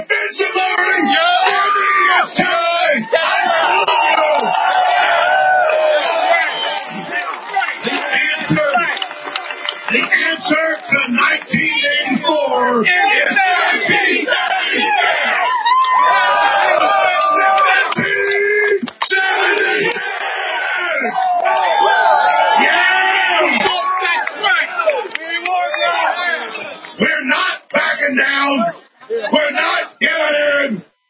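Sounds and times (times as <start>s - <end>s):
large crowd cheering and shouting: 0.2s - 30.8s
individual yells and whoops: 0.6s - 7.7s, 11.8s - 26.3s.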